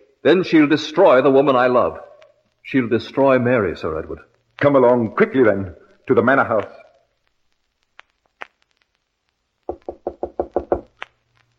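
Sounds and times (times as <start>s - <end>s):
speech: 0.2s - 6.8s
heavy knocking on a door: 9.7s - 10.9s.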